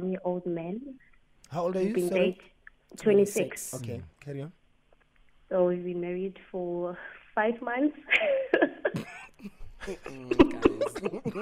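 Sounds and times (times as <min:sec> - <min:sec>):
speech: 0:00.2 - 0:04.6, 0:05.5 - 0:11.4
voiced breathy sounds edging toward laughter: 0:08.1 - 0:11.4
woman coughing: 0:08.8 - 0:09.4, 0:10.1 - 0:11.4.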